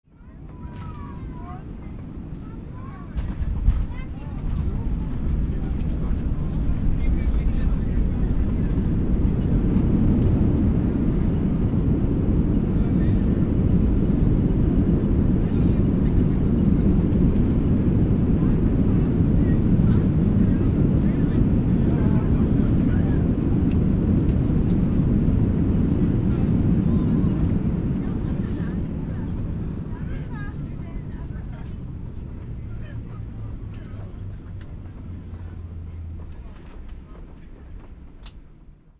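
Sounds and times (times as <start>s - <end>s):
airplane landing: 0.1s - 38.9s.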